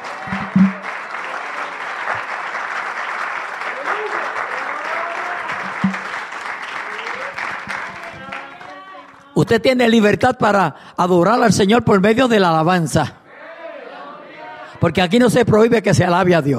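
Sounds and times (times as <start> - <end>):
audience applauding: 0.0 - 9.4
scattered voices calling out and cheering: 3.7 - 6.0, 6.8 - 9.5, 13.2 - 15.4
speech: 9.4 - 13.2, 14.8 - 16.5.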